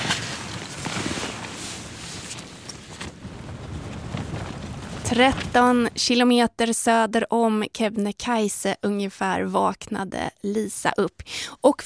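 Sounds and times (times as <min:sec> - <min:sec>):
wind blowing across microphone: 0:00.0 - 0:06.4
speech: 0:05.1 - 0:11.8.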